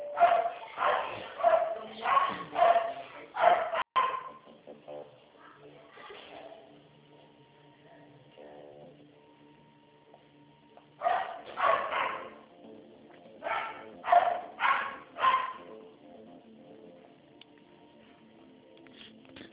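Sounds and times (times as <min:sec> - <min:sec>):
dog barking: 0:00.1 - 0:04.5, 0:11.0 - 0:12.5, 0:13.4 - 0:15.7.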